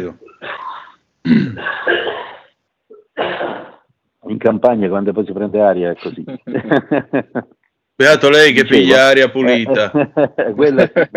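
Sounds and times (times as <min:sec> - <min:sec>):
harsh coughing bursts: 0:00.4 - 0:02.5, 0:03.2 - 0:03.8
speech: 0:01.2 - 0:02.1, 0:04.4 - 0:11.1
laughter: 0:06.1 - 0:07.6, 0:09.5 - 0:11.1.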